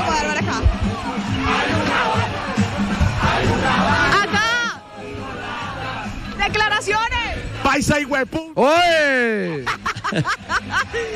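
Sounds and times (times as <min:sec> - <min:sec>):
football crowd cheering, shouting and chanting during a home win: 0:00.0 - 0:08.2
speech: 0:07.8 - 0:11.1
laughter: 0:09.5 - 0:11.1.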